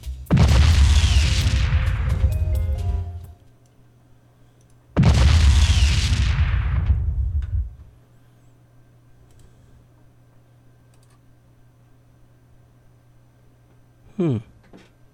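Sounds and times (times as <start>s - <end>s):
quiet low hum: 0.0s - 15.1s
booming explosions: 0.3s - 3.2s, 5.0s - 7.9s.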